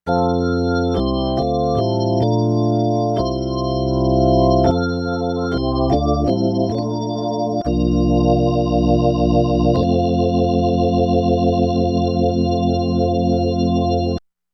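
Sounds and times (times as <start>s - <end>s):
organ master chorus: 0.2s - 14.2s.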